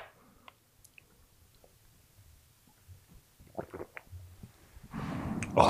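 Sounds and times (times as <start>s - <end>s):
faint small mouth and throat sounds: 0.4s - 5.6s
loud swallowing while drinking a not fully chilled drink: 3.4s - 4.5s.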